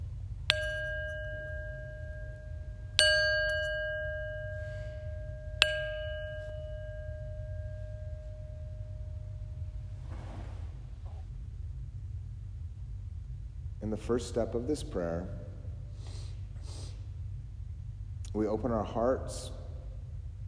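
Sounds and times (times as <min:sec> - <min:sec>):
meditation bell ringing to begin a prayer practice: 0:00.0 - 0:10.1
steady low hum: 0:00.0 - 0:20.4
speech: 0:13.9 - 0:15.4, 0:18.4 - 0:19.6.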